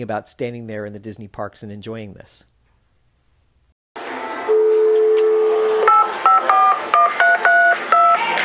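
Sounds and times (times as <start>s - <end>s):
speech: 0.0s - 2.5s
touch-tone beeps as a number is dialed: 4.6s - 8.3s
telephone dial tone: 5.0s - 8.2s.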